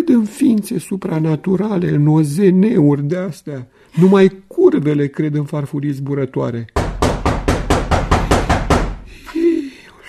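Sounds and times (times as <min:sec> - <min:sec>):
speech: 0:00.0 - 0:06.8
loud knocking on a door: 0:06.8 - 0:09.1.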